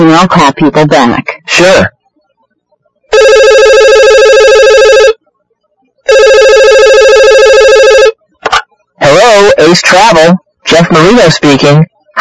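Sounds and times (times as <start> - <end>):
speech: 0.2 - 2.0, 9.5 - 12.2
telephone ringing in a travel agency office: 3.1 - 5.2, 6.0 - 8.2.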